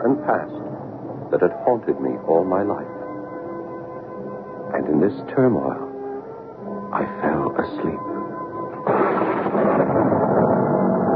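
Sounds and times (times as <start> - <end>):
speech: 0.0 - 0.7, 1.3 - 3.0, 4.7 - 5.9, 6.9 - 8.1, 8.8 - 10.1
enormous thunderclap: 8.8 - 11.1
sustained crackling rumbling roar: 8.8 - 11.1.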